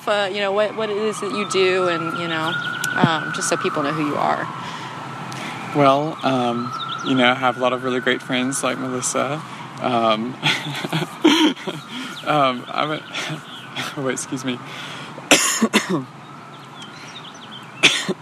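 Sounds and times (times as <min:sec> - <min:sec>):
speech: 0:00.0 - 0:04.6, 0:05.7 - 0:15.0, 0:15.6 - 0:16.2
laughter: 0:09.9 - 0:15.2
person coughing: 0:11.2 - 0:12.1, 0:15.2 - 0:16.1, 0:17.8 - 0:18.1.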